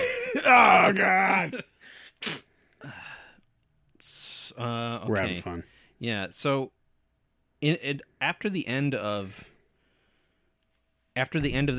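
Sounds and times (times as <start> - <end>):
speech: 0.4 - 3.0, 4.6 - 6.8, 7.6 - 9.5, 11.2 - 11.7
breathy exhale: 1.8 - 3.4
sneeze: 2.2 - 2.5.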